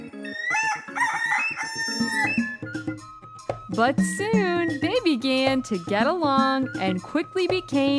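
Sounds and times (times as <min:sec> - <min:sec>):
rooster crowing: 0:00.3 - 0:02.6
speech: 0:03.8 - 0:07.9.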